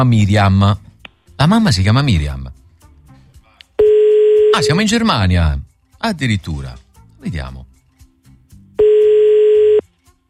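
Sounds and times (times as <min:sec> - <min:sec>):
speech: 0:00.0 - 0:00.8, 0:01.4 - 0:02.6, 0:04.6 - 0:07.7
telephone ringing tone on an outgoing call: 0:03.8 - 0:04.9, 0:08.8 - 0:09.8.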